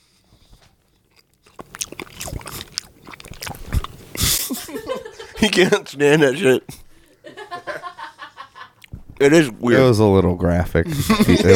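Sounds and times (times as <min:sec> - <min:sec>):
chewing gummy candies in the mouth: 0:00.6 - 0:04.4
laughter: 0:04.3 - 0:05.9, 0:07.2 - 0:08.8, 0:10.9 - 0:11.5
speech: 0:05.4 - 0:06.8, 0:09.2 - 0:11.5.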